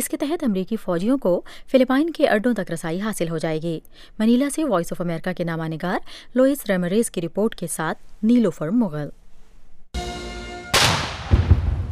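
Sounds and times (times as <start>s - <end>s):
speech: 0.0s - 9.2s
cannon fire from a 21-gun salute at a palace in Manila: 10.7s - 11.9s.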